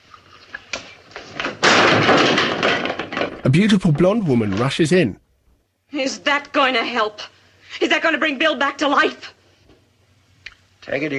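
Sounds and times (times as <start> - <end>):
chair slung across a room crashing and clattering: 0.8 - 5.0
speech: 3.5 - 5.2, 5.9 - 9.3, 10.8 - 11.1.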